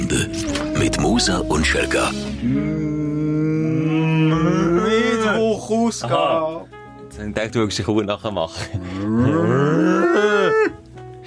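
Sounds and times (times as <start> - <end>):
speech: 0.1 - 3.1, 5.5 - 10.8
cow mooing: 2.4 - 5.4, 8.9 - 10.7.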